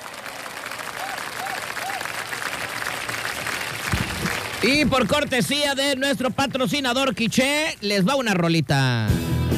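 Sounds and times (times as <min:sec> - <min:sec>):
steady applause from a crowd: 0:00.0 - 0:05.8
speech: 0:04.6 - 0:09.4.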